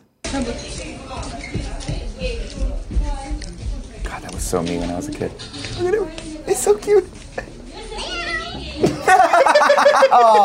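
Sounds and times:
speech: 0:00.3 - 0:03.4, 0:04.1 - 0:07.5, 0:09.8 - 0:10.4
cat meowing: 0:08.0 - 0:08.8
laughter: 0:08.8 - 0:10.4.

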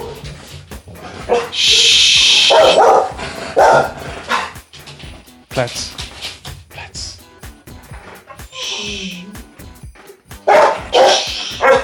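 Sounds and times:
dog barking: 0:01.2 - 0:04.6, 0:10.4 - 0:11.8
speech: 0:01.3 - 0:03.0, 0:05.6 - 0:06.0.

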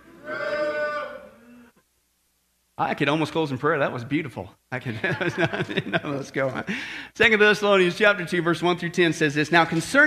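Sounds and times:
crowd of people imitating a cow mooing: 0:00.0 - 0:01.7
speech: 0:02.8 - 0:10.0
laughter: 0:04.8 - 0:06.9.

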